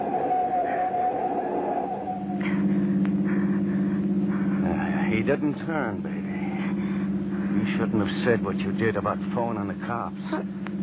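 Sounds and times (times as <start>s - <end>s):
car engine drone in motion: 0.0s - 10.8s
speech: 5.3s - 6.1s, 7.7s - 10.6s.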